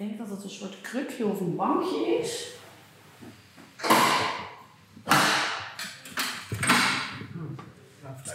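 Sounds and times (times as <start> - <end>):
speech: 0.0 - 2.6
heavy metal isolation cell door opening: 3.8 - 4.5, 5.9 - 7.3.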